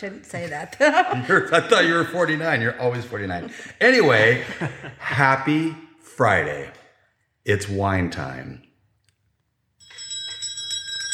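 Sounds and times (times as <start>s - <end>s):
speech: 0.0s - 6.8s, 7.4s - 8.7s
laughter: 0.4s - 5.6s
small bell ringing: 9.8s - 11.1s.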